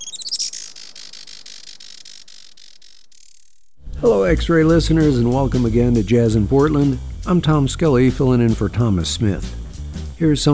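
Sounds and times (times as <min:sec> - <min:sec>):
Juan Fernandez firecrown hummingbird rapid high-pitched chirps: 0:00.0 - 0:03.7
speech: 0:04.0 - 0:09.6, 0:10.2 - 0:10.5.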